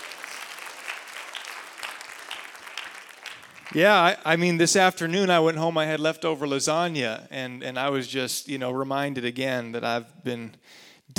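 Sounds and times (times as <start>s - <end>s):
audience clapping: 0.0s - 4.4s
speech: 3.7s - 11.1s.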